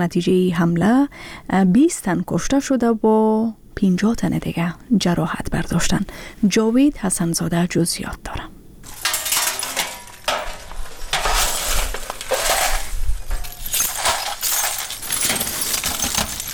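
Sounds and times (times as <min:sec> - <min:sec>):
speech: 0:00.0 - 0:08.6
broken glass shards clinking and scraping as families gather shattered glass in Kabul: 0:08.8 - 0:16.5.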